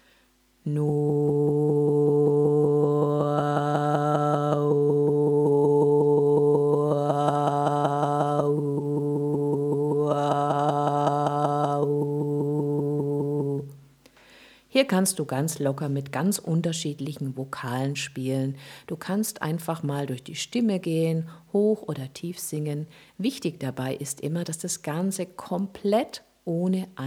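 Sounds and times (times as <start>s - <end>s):
speech: 0.6s - 1.2s, 14.9s - 27.0s
person humming a steady tone: 0.6s - 13.8s.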